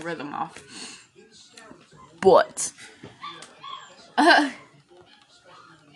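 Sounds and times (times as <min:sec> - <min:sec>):
speech: 0:00.0 - 0:01.0, 0:02.2 - 0:02.8, 0:04.2 - 0:04.6
puppies crying and whimpering in a cage: 0:03.2 - 0:05.9.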